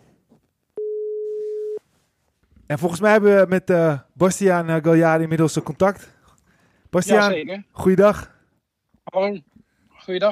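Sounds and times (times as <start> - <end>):
faint noise: 0.0 - 10.2
telephone call tone beep: 0.8 - 1.8
speech: 2.7 - 6.2, 6.9 - 8.3, 9.1 - 10.2.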